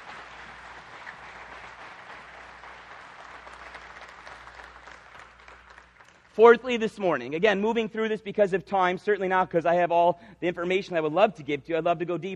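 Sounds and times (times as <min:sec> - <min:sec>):
large crowd applause: 0:00.0 - 0:06.4
speech: 0:06.4 - 0:12.3.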